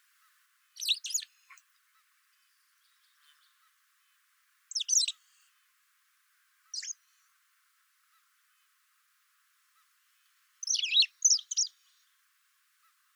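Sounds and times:
White wagtail Motacilla alba calling with sharp notes: 4.7 - 5.2, 6.8 - 7.0, 10.6 - 11.7.

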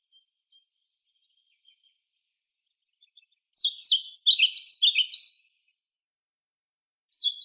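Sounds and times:
European pied flycatcher Ficedula hypoleuca singing high see-sawing chirps: 3.6 - 5.7, 7.1 - 7.4.

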